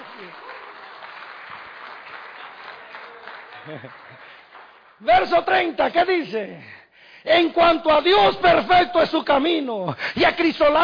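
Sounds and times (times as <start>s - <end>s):
audience applauding: 0.0s - 5.6s
laughter: 3.4s - 4.3s
speech: 3.6s - 4.4s, 5.0s - 10.8s.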